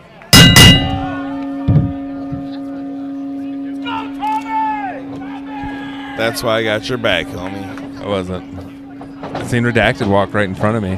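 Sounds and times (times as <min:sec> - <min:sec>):
boxing ring bell clanging: 0:00.4 - 0:10.9
speech: 0:06.2 - 0:08.7, 0:09.3 - 0:10.9.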